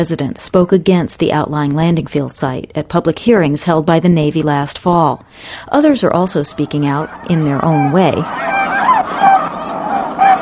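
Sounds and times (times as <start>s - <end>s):
speech: 0.0s - 9.3s
large flock of geese and tundra swans honking: 5.7s - 10.4s.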